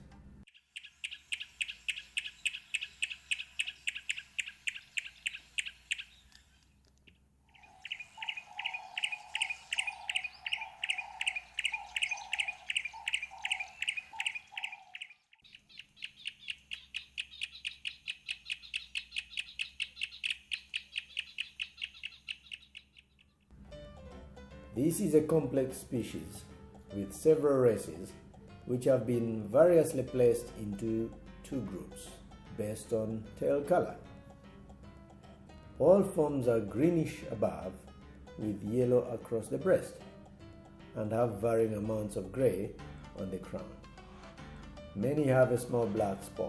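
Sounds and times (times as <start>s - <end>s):
yellow-breasted apalis singing: 0.5s - 6.6s, 7.5s - 23.5s, 25.2s - 46.4s
speech: 24.8s - 34.0s, 35.8s - 40.0s, 41.0s - 43.8s, 45.0s - 46.4s.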